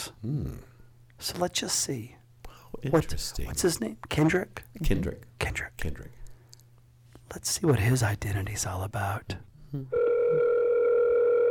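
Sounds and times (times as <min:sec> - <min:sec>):
speech: 0:00.1 - 0:06.2, 0:07.3 - 0:10.4
loud electronic phone ringing tone: 0:10.0 - 0:11.4.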